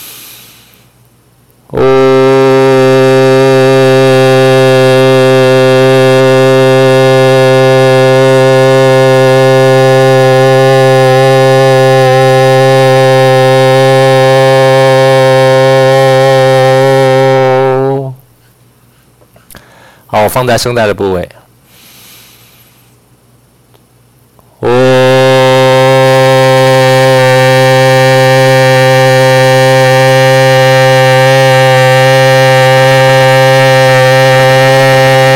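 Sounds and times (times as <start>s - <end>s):
man holding a low-pitched vocal woo tone: 1.7s - 18.4s, 24.6s - 35.3s
speech: 20.4s - 21.4s.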